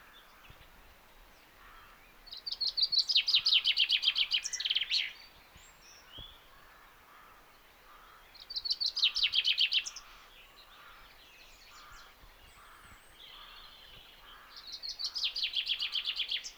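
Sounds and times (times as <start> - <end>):
soft background bird calls: 0.0 - 16.5.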